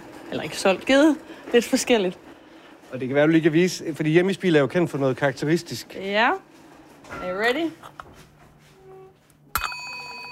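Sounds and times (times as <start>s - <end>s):
speech: 0.3s - 2.2s, 2.9s - 8.0s
small broken bell with a spoon attached clanging: 9.5s - 10.3s.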